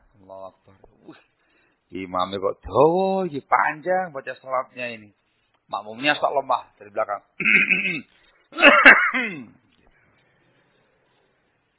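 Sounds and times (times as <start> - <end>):
speech: 0.3 - 1.3, 1.9 - 9.6
person imitating clearing throat during prayer: 7.4 - 9.6.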